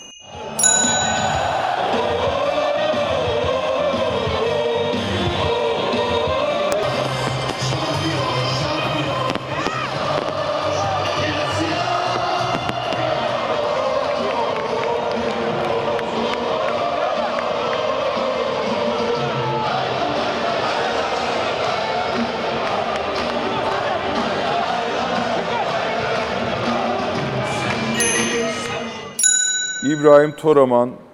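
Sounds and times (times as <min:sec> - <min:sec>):
brief sharp ringing tone: 0:00.0 - 0:02.1, 0:28.0 - 0:30.7
crowd roaring and chanting at a football championship celebration in Denizli: 0:00.4 - 0:29.2
speech: 0:30.0 - 0:31.0.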